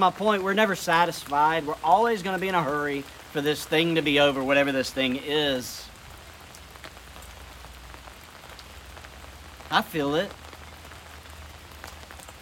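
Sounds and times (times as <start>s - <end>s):
speech: 0.0s - 5.9s, 9.7s - 10.4s
steady rain falling: 0.0s - 12.3s.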